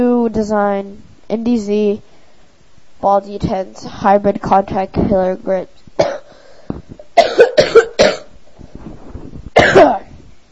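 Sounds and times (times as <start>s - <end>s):
speech: 0.0s - 2.1s, 3.0s - 7.8s
harsh coughing fit: 6.0s - 6.4s, 7.2s - 8.3s, 9.6s - 10.1s
wheezy breathing: 6.2s - 6.9s.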